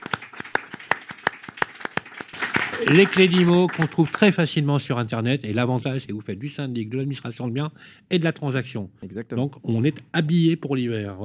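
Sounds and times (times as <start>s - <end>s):
audience rhythmic hand clapping applauding a guest: 0.0s - 4.7s
speech: 2.8s - 11.2s.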